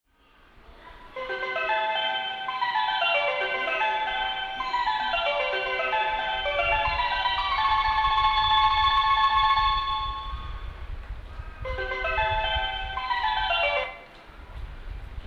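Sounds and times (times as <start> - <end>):
melody: 1.1 - 10.7, 11.7 - 14.1.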